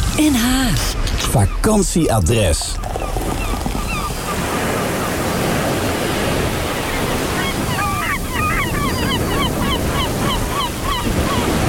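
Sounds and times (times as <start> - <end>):
speech: 0.2 - 2.9
crowd of seagulls calling: 1.0 - 11.6
dense broadband surf roaring: 2.5 - 11.6.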